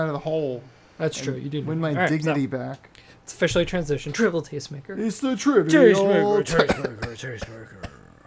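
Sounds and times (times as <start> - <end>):
speech: 0.0 - 8.2
person coughing: 6.5 - 8.2.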